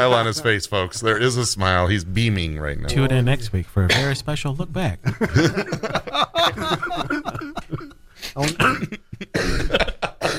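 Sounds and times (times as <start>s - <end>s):
speech: 0.0s - 7.2s, 8.4s - 9.8s
laughter: 5.0s - 8.0s, 8.6s - 10.2s
rough throat clearing: 8.5s - 10.3s
short coughs: 8.5s - 10.3s.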